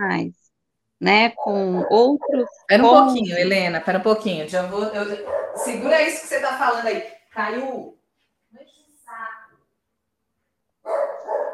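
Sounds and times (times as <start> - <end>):
speech: 0.0 - 0.4, 1.0 - 9.3
dog barking: 1.4 - 2.7, 5.2 - 5.9, 10.8 - 11.5.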